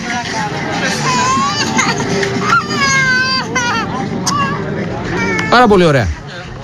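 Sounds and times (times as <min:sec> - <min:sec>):
crowd chatter and hubbub outside a church in Nikaia: 0:00.0 - 0:06.6
baby crying outside a church in Nikaia: 0:00.8 - 0:05.7
speech: 0:05.6 - 0:06.2.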